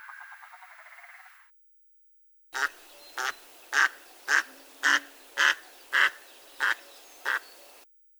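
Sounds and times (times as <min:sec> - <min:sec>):
northern pintail Anas acuta whistled and harsh calls: 0:02.6 - 0:07.8.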